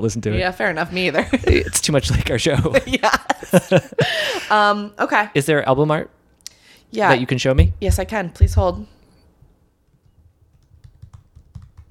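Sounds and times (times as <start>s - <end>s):
speech: 0.0s - 6.2s, 6.9s - 9.0s
laughter: 1.1s - 4.5s
typing on a computer keyboard: 10.6s - 11.8s.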